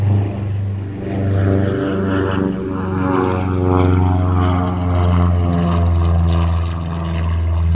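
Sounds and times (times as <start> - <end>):
plane: 0.0 - 7.7.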